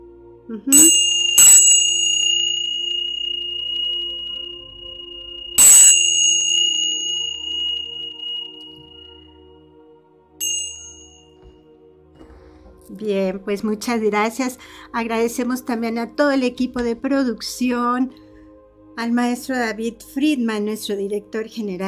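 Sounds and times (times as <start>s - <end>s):
speech: 0.5s - 1.1s, 12.9s - 18.2s, 19.0s - 21.8s
small cymbals struck as a calling sound: 0.7s - 9.2s, 10.4s - 11.2s.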